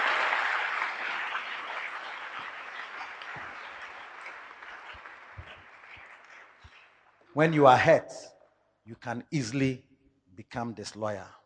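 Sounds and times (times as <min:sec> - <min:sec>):
church congregation clapping hands in continuous applause: 0:00.0 - 0:07.8
speech: 0:07.4 - 0:08.3, 0:08.9 - 0:11.4.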